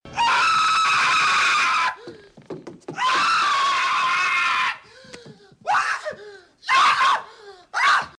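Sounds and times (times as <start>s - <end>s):
people screaming in terror as a mobile phone ringtone: 0.1s - 2.0s, 3.0s - 4.8s, 5.7s - 8.1s.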